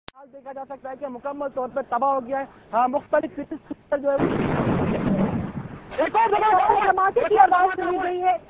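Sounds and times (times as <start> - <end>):
speech: 0.2 - 5.1, 5.9 - 8.4
deep rumbling explosion in the Korangi–Orangi number 5 area: 4.2 - 6.0.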